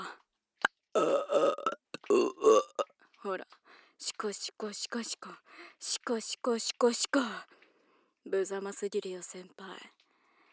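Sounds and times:
person burping deliberately: 0:01.0 - 0:02.9
speech: 0:03.4 - 0:07.6, 0:08.2 - 0:10.0.

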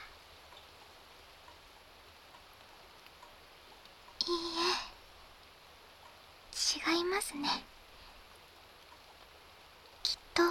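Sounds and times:
steady soft rainfall: 0:00.0 - 0:10.4
speech: 0:06.9 - 0:07.7.

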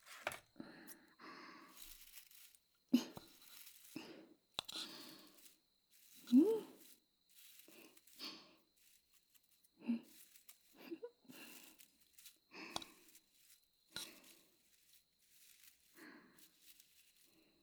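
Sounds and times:
crinkly rustling of tobacco leaves: 0:01.6 - 0:17.6.

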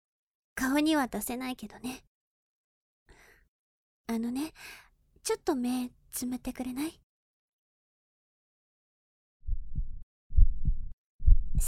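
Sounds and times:
speech: 0:00.6 - 0:02.1, 0:04.1 - 0:07.0
slow heartbeats: 0:09.5 - 0:11.6.

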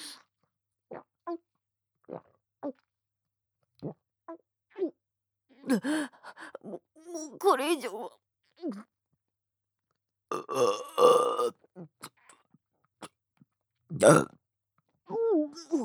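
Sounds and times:
speech: 0:02.1 - 0:02.8, 0:05.7 - 0:08.9, 0:10.3 - 0:11.9, 0:13.9 - 0:14.4
loud coarse burps: 0:10.3 - 0:11.5, 0:14.0 - 0:14.3.

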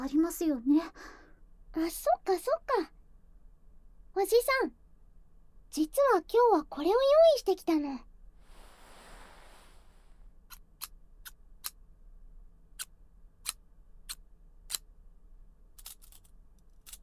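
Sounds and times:
speech: 0:00.0 - 0:01.2, 0:01.8 - 0:03.0, 0:04.2 - 0:04.8, 0:05.7 - 0:08.1
scissors snipping: 0:15.8 - 0:17.0.

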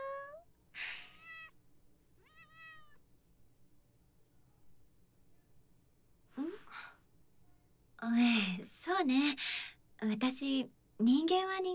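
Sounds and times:
kitten meowing: 0:02.2 - 0:03.0
speech: 0:09.0 - 0:11.7.

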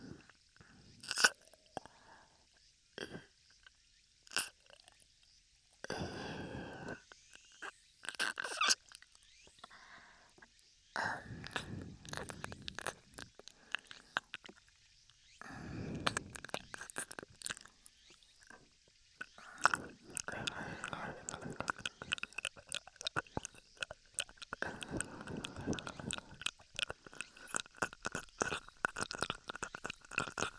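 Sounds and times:
slow wet licking and mouth sounds on an ear: 0:01.0 - 0:01.6, 0:05.9 - 0:09.9, 0:11.0 - 0:30.5.

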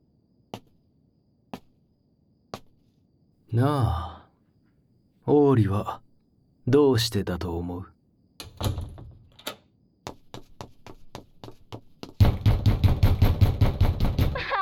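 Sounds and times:
speech: 0:03.5 - 0:04.1, 0:05.3 - 0:06.0, 0:06.7 - 0:07.9
sharp knocks and pounding on a locked door: 0:08.4 - 0:09.3, 0:10.1 - 0:14.5
locked door rattling: 0:08.4 - 0:09.6, 0:12.2 - 0:14.4.

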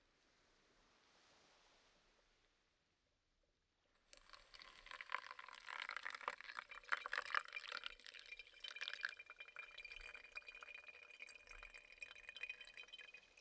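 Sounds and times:
hot water poured for making drip coffee: 0:04.1 - 0:13.3.

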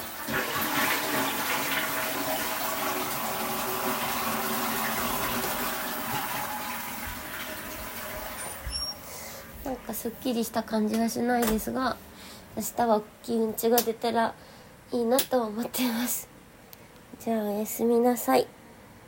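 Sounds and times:
toilet flushing: 0:00.0 - 0:09.9
speech: 0:09.9 - 0:16.3, 0:17.2 - 0:18.6.

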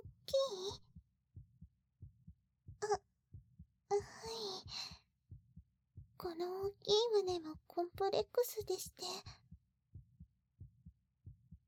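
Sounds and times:
heartbeat thumping in lub-dub pairs: 0:00.0 - 0:11.6
speech: 0:06.2 - 0:09.4.

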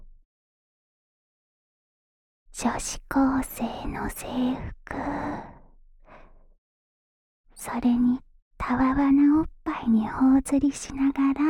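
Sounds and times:
speech: 0:02.6 - 0:05.5, 0:07.6 - 0:11.4
deep breath: 0:05.1 - 0:06.5.

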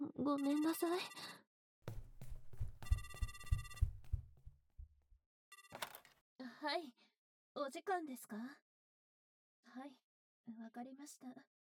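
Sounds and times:
speech: 0:00.2 - 0:01.4, 0:06.6 - 0:07.0, 0:07.6 - 0:08.6, 0:09.7 - 0:11.5
dull thumps: 0:01.9 - 0:04.5
hotel room telephone ringing with a shrill electronic trill: 0:02.8 - 0:04.2, 0:05.5 - 0:05.9.

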